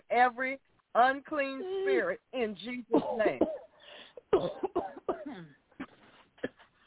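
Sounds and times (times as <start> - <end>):
speech: 0.2 - 3.6, 4.3 - 5.6
several people coughing in short harsh bursts: 2.9 - 3.7, 4.3 - 6.7.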